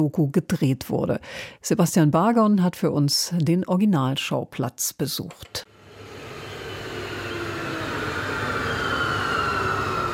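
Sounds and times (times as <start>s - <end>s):
speech: 0.0s - 5.7s
S-Bahn train rumbling past at Himmelreich station in the Black Forest: 5.7s - 10.1s
S-Bahn train wheels squealing: 6.3s - 10.1s.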